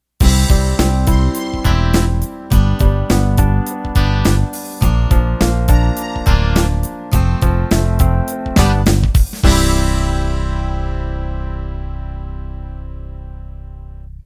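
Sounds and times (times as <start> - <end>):
pop ballad ending: 0.2 - 13.9.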